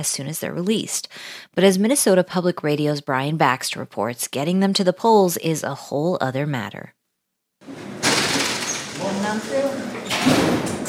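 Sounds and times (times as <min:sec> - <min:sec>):
speech: 0:00.0 - 0:07.0
heavy prison doors sliding on tracks at a high-security correctional facility in Minnesota: 0:07.6 - 0:10.8.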